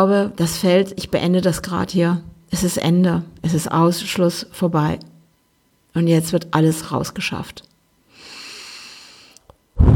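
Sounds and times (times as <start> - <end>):
speech: 0.0 - 5.1, 6.0 - 7.7
deep breathing in and out: 8.1 - 9.9.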